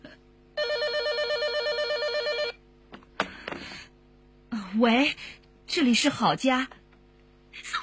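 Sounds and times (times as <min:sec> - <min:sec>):
telephone ringing with electronic trill: 0:00.6 - 0:02.6
speech: 0:04.8 - 0:06.8.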